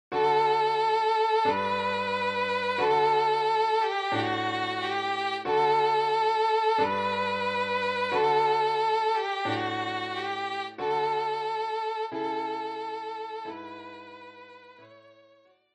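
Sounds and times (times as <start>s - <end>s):
violin: 0.1s - 15.5s.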